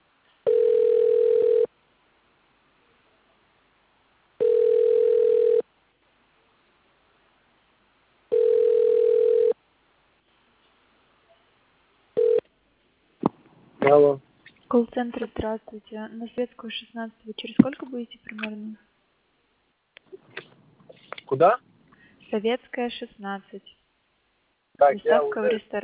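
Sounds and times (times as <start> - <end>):
telephone ringback tone while dialling: 0.5 - 1.7, 4.4 - 5.6, 8.3 - 9.6, 12.2 - 12.4
speech: 14.7 - 18.9, 21.3 - 21.7, 22.3 - 23.8, 24.8 - 25.8.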